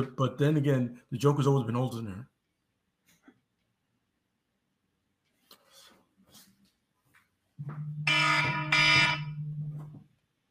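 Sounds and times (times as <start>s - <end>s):
speech: 0.0s - 2.3s, 7.6s - 8.7s
loud electronic phone alarm blaring: 7.6s - 9.9s.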